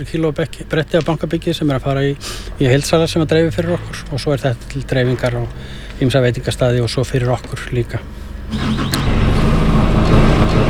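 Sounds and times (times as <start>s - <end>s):
speech: 0.0s - 8.8s
forklift engine rumbling while a pallet of barley is loaded onto a truck: 0.0s - 10.6s.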